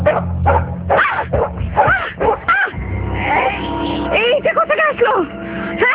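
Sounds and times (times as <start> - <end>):
dog barking and whining: 0.0 - 3.6
low steady hum: 0.0 - 5.9.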